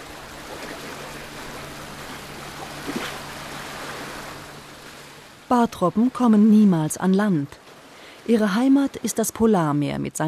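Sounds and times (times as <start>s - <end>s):
faint low motor hum of a small boat: 0.0s - 6.5s
open sea washing and splashing around a small boat: 0.0s - 9.6s
speech: 5.5s - 7.6s, 8.2s - 10.2s.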